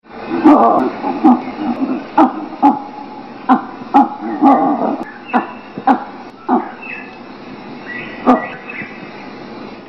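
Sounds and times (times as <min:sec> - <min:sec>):
kipunji honk bark: 0:01.1 - 0:06.8, 0:08.2 - 0:08.6.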